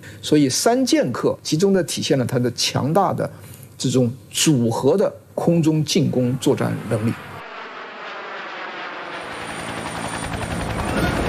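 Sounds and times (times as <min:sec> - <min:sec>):
speech: 0:00.2 - 0:07.3
military helicopter engine roar: 0:06.1 - 0:11.2
military helicopter rotors beating overhead: 0:07.8 - 0:11.2.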